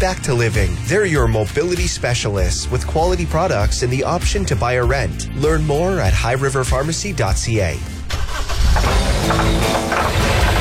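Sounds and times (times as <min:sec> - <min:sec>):
speech: 0:00.0 - 0:08.0, 0:08.7 - 0:10.5
vehicle engine running: 0:08.4 - 0:10.5.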